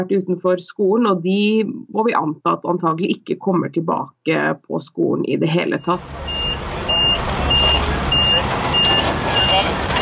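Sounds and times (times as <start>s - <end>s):
speech: 0.0s - 6.4s
busy outdoor noise: 0.0s - 10.0s
reversing truck engine rumbling: 5.6s - 10.0s
truck backup alarm beeping: 5.6s - 10.0s.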